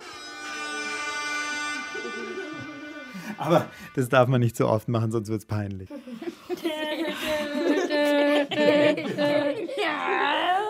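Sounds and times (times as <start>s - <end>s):
loud buzzy party horn blaring: 0.0s - 4.2s
laughter: 1.8s - 3.7s, 5.9s - 10.6s
speech: 3.3s - 7.7s.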